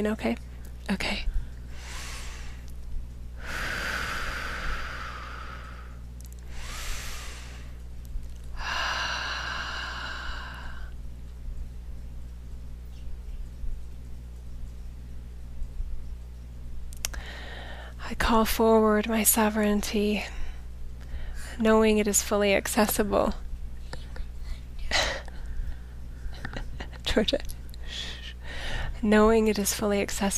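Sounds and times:
speech: 0.0s - 1.3s, 18.3s - 20.4s, 21.6s - 23.4s, 27.2s - 27.5s, 29.0s - 30.3s
steady low hum: 0.0s - 30.3s
deep breathing in through the nose and out through the mouth during a guided meditation: 1.3s - 2.7s, 3.4s - 7.8s, 8.5s - 11.0s, 17.1s - 18.0s, 27.8s - 29.0s.

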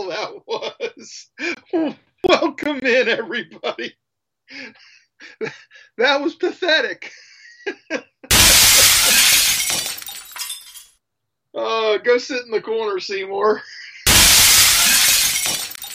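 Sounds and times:
speech: 0.1s - 8.6s, 11.6s - 13.8s
glass shattering: 8.3s - 11.0s, 14.1s - 15.9s.

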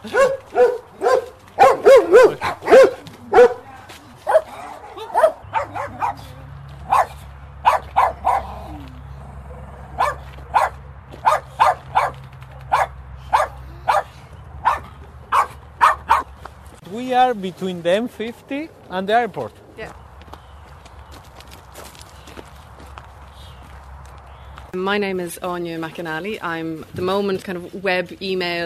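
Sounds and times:
dogs barking at a dog sanctuary: 0.0s - 8.8s, 9.4s - 16.4s
speech: 17.3s - 20.0s, 24.8s - 28.6s.

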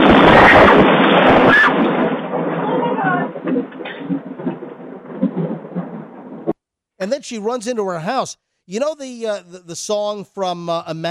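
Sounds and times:
lightning strike hitting a tall oak tree: 0.0s - 6.6s
rumbling thunder: 0.0s - 6.6s
speech: 7.0s - 11.0s.

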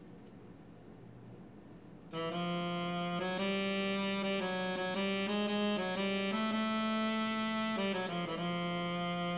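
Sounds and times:
synthesized melodic line generated from brain sensor data: 2.1s - 9.3s.

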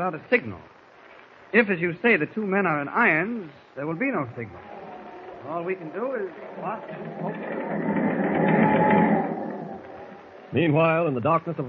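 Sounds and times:
speech: 0.0s - 0.8s, 1.5s - 4.7s, 5.4s - 7.7s, 10.5s - 11.6s
ship's engine running below decks: 4.0s - 10.5s.

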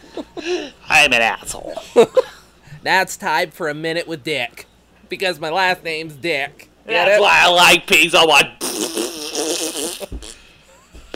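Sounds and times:
speech: 0.2s - 8.6s
long buzzy fart with sputtering bursts: 8.6s - 11.1s.

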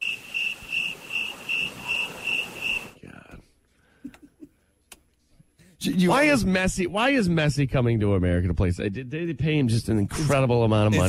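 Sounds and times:
cricket chirping sound effect played from a button: 0.0s - 2.9s
speech: 5.8s - 11.0s.

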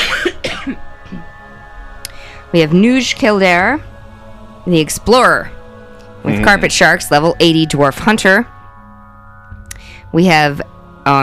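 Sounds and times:
person coughing: 0.0s - 1.3s
speech: 2.5s - 3.9s, 4.6s - 5.6s, 6.2s - 8.5s, 10.1s - 11.2s.

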